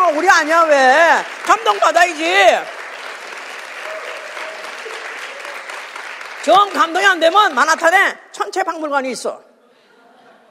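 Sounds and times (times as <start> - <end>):
large crowd applauding: 0.0 - 7.8
speech: 0.1 - 2.8, 6.4 - 9.5.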